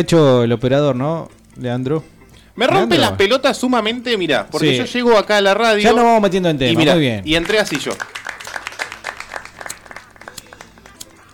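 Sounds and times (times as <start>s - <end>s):
speech: 0.0s - 8.2s
lighter flicking without catching: 1.2s - 2.5s, 8.3s - 11.3s.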